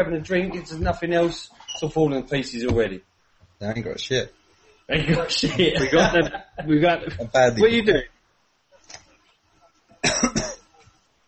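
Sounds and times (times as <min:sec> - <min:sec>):
speech: 0:00.0 - 0:08.2
laughter: 0:04.9 - 0:07.4
person coughing: 0:05.0 - 0:06.1, 0:10.0 - 0:10.7.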